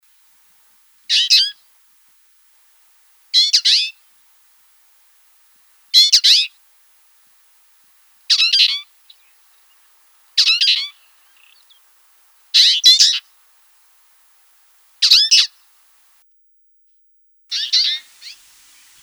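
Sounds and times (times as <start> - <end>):
twite calling: 1.1 - 1.6, 3.3 - 4.0, 5.9 - 6.6, 8.2 - 13.4, 15.0 - 15.7, 17.5 - 19.0.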